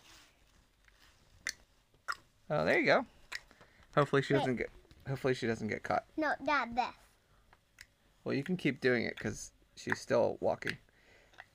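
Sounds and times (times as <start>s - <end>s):
mouth clicks imitating pig hooves clicking on gravel: 1.4s - 2.3s, 3.3s - 3.6s
speech: 2.5s - 3.2s, 4.0s - 7.0s, 8.2s - 10.8s.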